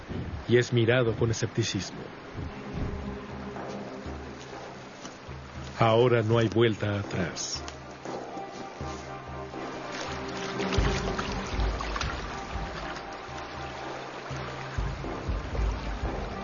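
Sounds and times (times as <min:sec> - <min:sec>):
strong river current of meltwater: 0:00.0 - 0:16.4
speech: 0:00.5 - 0:02.6, 0:05.8 - 0:07.7.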